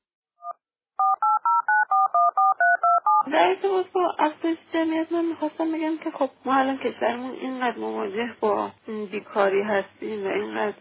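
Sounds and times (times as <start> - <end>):
telephone keypad touch-tone dialing beeps: 0.4 - 3.3
speech: 3.3 - 10.7.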